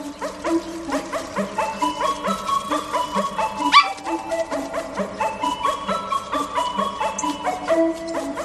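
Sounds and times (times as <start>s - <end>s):
bouncy orchestral film score tune: 0.0s - 8.4s
dog barking: 3.6s - 4.1s.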